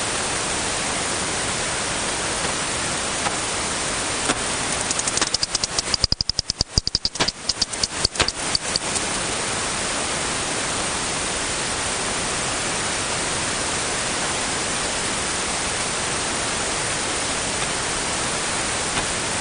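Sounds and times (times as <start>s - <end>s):
steady bat detector hiss: 0.0s - 19.3s
bat echolocation pops through a bat detector: 4.3s - 9.2s.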